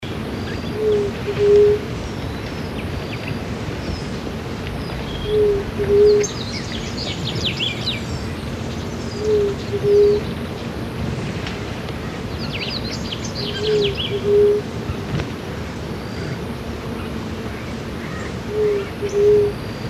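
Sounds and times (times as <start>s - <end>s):
Large-tailed Dove Leptotila megalura calling: 0.4s - 8.4s, 9.1s - 10.4s, 13.2s - 15.0s, 16.2s - 19.8s.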